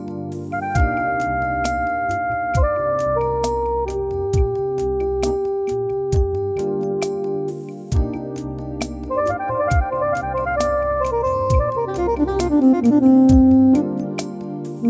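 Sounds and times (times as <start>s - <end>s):
smooth jazz saxophone: 0.5s - 14.8s.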